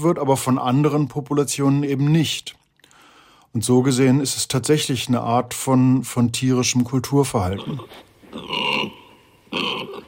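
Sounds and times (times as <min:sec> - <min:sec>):
speech: 0:00.0 - 0:02.6, 0:03.5 - 0:10.0
pigs grunting: 0:07.5 - 0:10.0.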